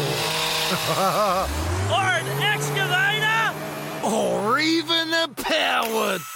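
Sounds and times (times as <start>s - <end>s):
person vocally imitating a road saw cutting: 0.0s - 4.5s
laughter: 0.7s - 2.1s
speech: 0.7s - 3.3s, 4.0s - 6.3s.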